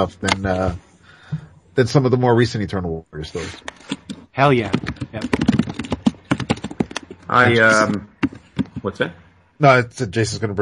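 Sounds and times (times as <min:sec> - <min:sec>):
speech: 0:00.0 - 0:00.9, 0:01.8 - 0:05.5, 0:07.3 - 0:08.1, 0:08.8 - 0:10.6
typing on a computer keyboard: 0:03.7 - 0:07.2.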